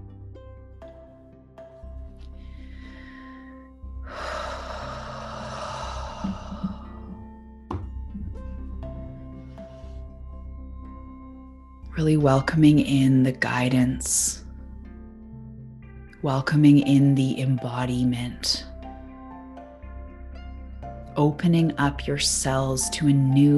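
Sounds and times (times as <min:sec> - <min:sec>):
sustained musical drone: 0:00.0 - 0:23.5
deep controlled breathing in a guided breathing exercise: 0:02.4 - 0:07.4
speech: 0:12.0 - 0:14.4, 0:16.2 - 0:18.7, 0:21.2 - 0:23.5.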